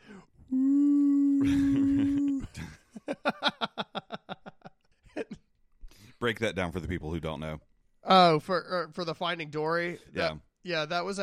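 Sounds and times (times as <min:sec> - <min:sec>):
voice imitating whale call: 0:00.5 - 0:02.5
laughter: 0:01.4 - 0:05.5
speech: 0:06.2 - 0:11.2.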